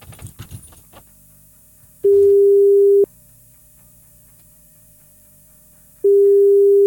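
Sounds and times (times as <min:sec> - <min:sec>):
handling clatter: 0:00.0 - 0:01.1
outgoing call ringback beeps: 0:02.0 - 0:03.1, 0:06.1 - 0:06.8.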